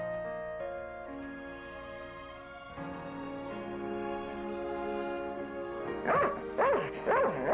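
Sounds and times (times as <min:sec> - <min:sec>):
soft sustained music: 0:00.0 - 0:07.5
small dog barking: 0:06.0 - 0:07.5.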